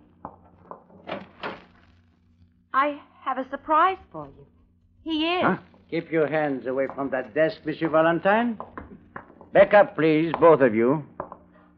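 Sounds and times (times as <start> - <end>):
closet door opening with soft wooden clunks and rattles: 0.9 - 1.7
speech: 2.8 - 8.8, 9.5 - 11.1.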